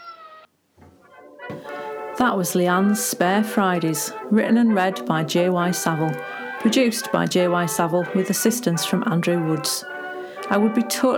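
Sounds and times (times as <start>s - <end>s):
cat meowing: 0.0s - 0.5s
speech: 1.5s - 9.9s, 10.5s - 11.1s.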